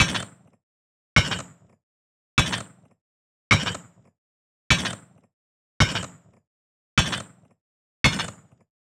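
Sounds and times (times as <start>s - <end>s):
large metallic robot footsteps: 1.2s - 1.8s, 2.4s - 2.9s, 3.5s - 4.1s, 4.7s - 5.2s, 5.8s - 6.4s, 7.0s - 8.7s.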